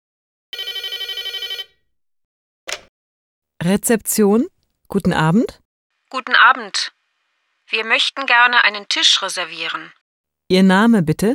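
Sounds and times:
electronic telephone ringing: 0.5 - 1.9
speech: 3.6 - 7.0, 7.7 - 11.3.

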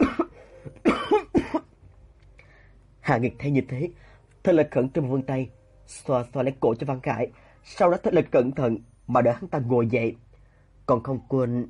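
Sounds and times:
harsh throaty coughs after choking on a piece of apple while lying down: 0.0 - 1.8
speech: 3.1 - 10.2, 10.9 - 11.6.

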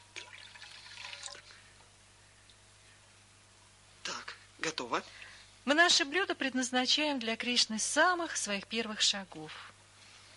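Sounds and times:
water poured while a food offering is prepared: 0.2 - 1.6
speech: 4.8 - 9.7.

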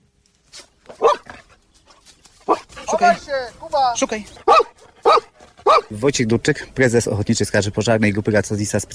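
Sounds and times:
rescue dog barking to signal a found person: 1.0 - 1.4, 2.5 - 2.7, 4.4 - 5.9
speech: 3.0 - 8.9.

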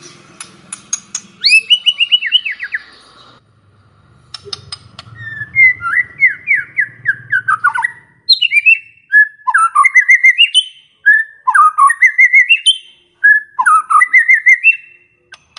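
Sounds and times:
faint low hum: 0.0 - 9.2
White-rumped shama singing varied loud whistles in a lure recording: 1.4 - 2.9, 5.2 - 15.0.

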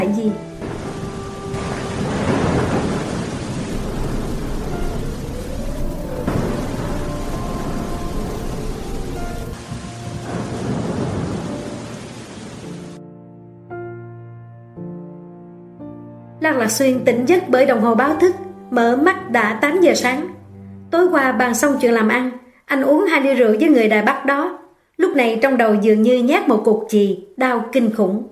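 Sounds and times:
soft tonal music: 0.0 - 22.2
speech: 0.2 - 0.5, 16.5 - 20.3, 20.9 - 28.3
rolling thunder: 0.4 - 13.0
steady rain: 0.4 - 13.0.

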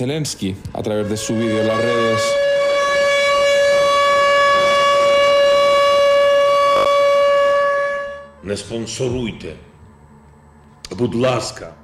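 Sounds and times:
speech: 0.0 - 2.5, 8.5 - 9.7, 10.9 - 11.8
air raid siren wailing in Ukraine: 0.8 - 9.1.

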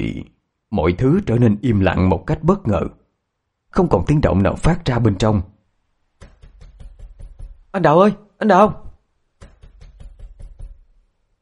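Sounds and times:
speech: 0.0 - 3.0, 3.7 - 5.5, 7.7 - 8.8
repeated hard dull banging on a door: 6.2 - 7.7, 9.4 - 10.9.

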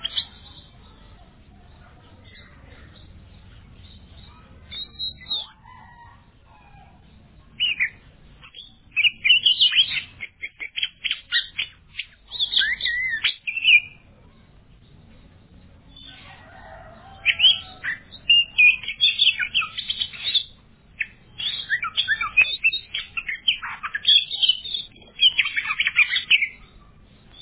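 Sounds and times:
Oriental magpie-robin song: 3.8 - 6.1, 7.6 - 14.1, 17.2 - 27.4.

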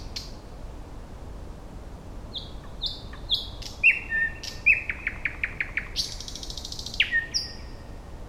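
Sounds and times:
Thrush Nightingale Luscinia luscinia song: 0.0 - 0.6, 2.3 - 8.2
background hiss: 0.0 - 8.2.

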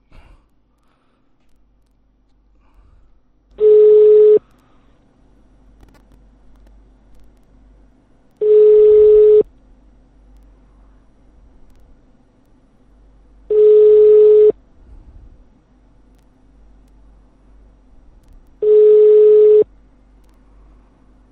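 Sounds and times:
faint hum of telephone line noise: 0.0 - 21.2
telephone line tone beeps: 3.6 - 4.4, 8.4 - 9.4, 13.5 - 14.6, 18.6 - 19.6.

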